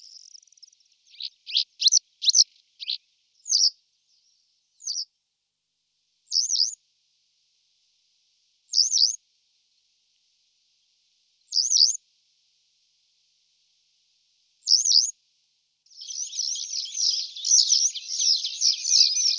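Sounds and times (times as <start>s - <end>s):
western yellow wagtail calls: 0.0s - 3.7s, 15.9s - 19.3s.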